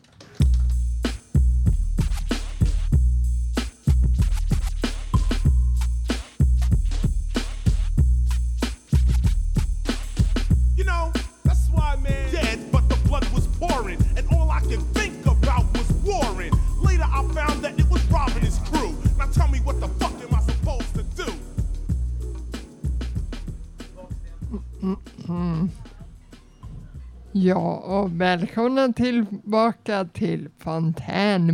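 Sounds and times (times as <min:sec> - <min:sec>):
loud hip hop track with heavy bass-driven beat: 0:00.4 - 0:24.7, 0:25.6 - 0:27.3
layered vocals over hip hop groove: 0:10.8 - 0:21.6
speech: 0:27.4 - 0:31.5.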